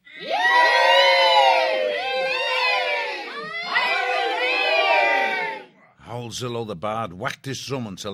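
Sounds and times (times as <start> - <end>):
crowd cheering and chanting: 0.0 - 5.7
speech: 6.3 - 8.1.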